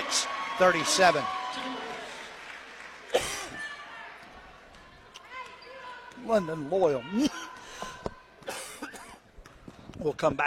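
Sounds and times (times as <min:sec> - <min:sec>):
speech: 0:00.6 - 0:01.4, 0:06.3 - 0:07.4, 0:10.0 - 0:10.4
man coughing: 0:03.1 - 0:03.6, 0:08.5 - 0:09.2.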